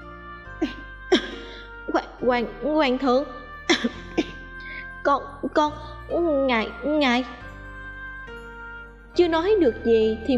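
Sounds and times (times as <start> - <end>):
person coughing hard: 0.6 - 1.6, 3.7 - 4.5
speech: 2.2 - 4.0, 5.1 - 7.4, 9.2 - 10.3.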